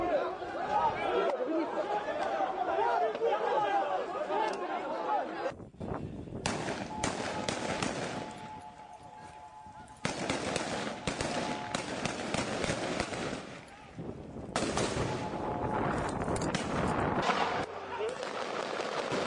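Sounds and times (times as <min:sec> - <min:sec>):
riot crowd shouting: 0:00.0 - 0:05.6, 0:06.6 - 0:14.0, 0:17.2 - 0:19.2
police stun grenades exploding to disperse a protest: 0:06.4 - 0:08.6, 0:10.0 - 0:13.7, 0:14.5 - 0:19.2
fireworks fired at police during a riot: 0:06.4 - 0:08.7, 0:10.0 - 0:19.2.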